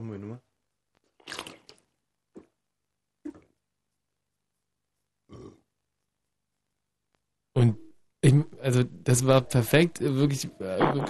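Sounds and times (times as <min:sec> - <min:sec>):
long loud deliberate burp: 0:05.3 - 0:05.7
short belching grunts: 0:05.3 - 0:05.7
speech: 0:08.8 - 0:11.0.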